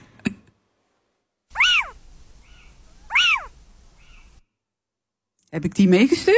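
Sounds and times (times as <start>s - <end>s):
little owl mewing calls: 1.5s - 4.4s
speech: 5.5s - 6.3s.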